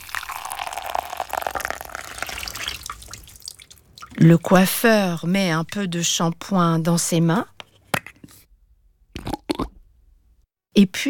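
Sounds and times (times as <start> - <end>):
water running and splashing over a client's hair during a hair wash at a hairdresser's: 0.0 - 4.7
small drips of water: 0.0 - 5.8
speech: 4.2 - 7.5, 10.8 - 11.0.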